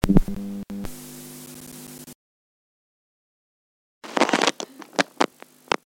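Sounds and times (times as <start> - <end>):
analog tape noise: 0.0 - 2.1, 4.0 - 5.9.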